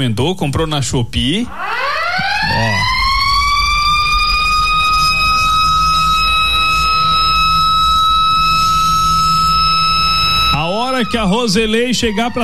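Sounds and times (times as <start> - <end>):
speech: 0.0 - 3.0, 10.6 - 12.4
factory siren for a garment sewing workshop wailing: 1.4 - 12.4
low rumble: 1.5 - 12.4.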